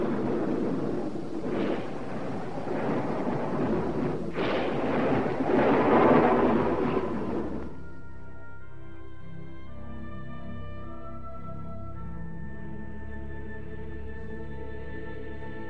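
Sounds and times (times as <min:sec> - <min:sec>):
thunder rumbling from a thunderstorm: 0:00.0 - 0:08.9.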